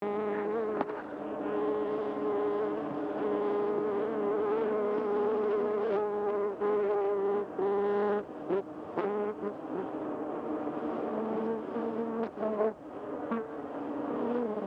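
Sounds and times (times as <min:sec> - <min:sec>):
bee buzzing: 0:00.0 - 0:14.6.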